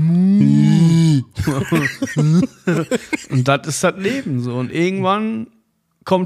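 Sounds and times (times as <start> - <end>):
person imitating a cow mooing: 0.0 - 1.4
laughter: 1.4 - 4.4
speech: 1.5 - 6.2.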